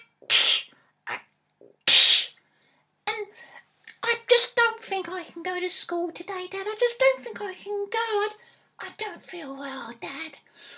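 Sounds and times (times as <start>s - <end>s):
child sneezing: 0.0s - 1.2s, 1.8s - 2.4s
speech: 5.2s - 10.7s.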